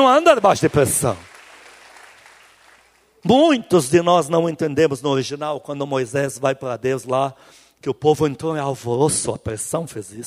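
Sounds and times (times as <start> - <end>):
speech: 0.0 - 1.3, 3.2 - 10.2
audience applauding: 0.0 - 3.2.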